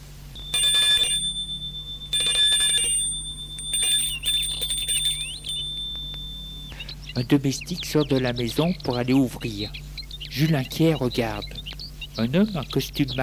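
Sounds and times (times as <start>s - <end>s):
low steady hum: 0.0s - 13.2s
gate bell ringing electronically: 0.4s - 6.8s
speech: 7.2s - 9.8s, 10.4s - 11.6s, 12.2s - 13.2s.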